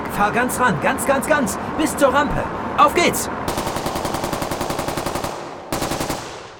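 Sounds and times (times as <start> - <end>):
speech: 0.2 - 3.6
automatic assault rifle fire into the air beside a plane at an airport: 3.5 - 6.5.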